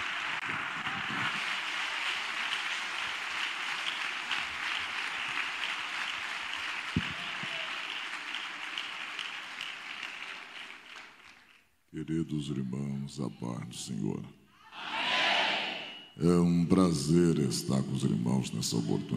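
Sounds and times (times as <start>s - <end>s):
audience applauding: 0.0s - 11.7s
speech: 12.0s - 14.4s, 16.2s - 19.1s.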